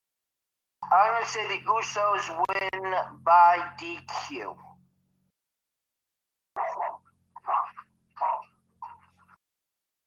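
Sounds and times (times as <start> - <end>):
speech: 0.9 - 4.7
female dog barking: 6.6 - 9.3.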